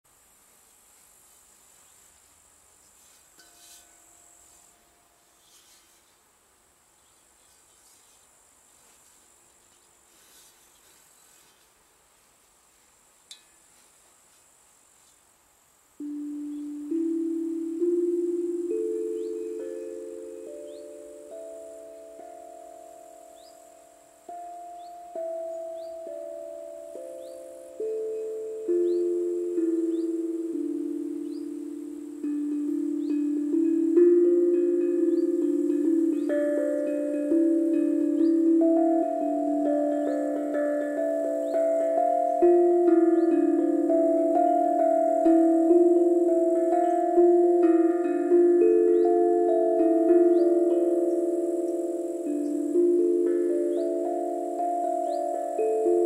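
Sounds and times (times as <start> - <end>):
D pygmy pentatonic scale: 16.0 - 56.0.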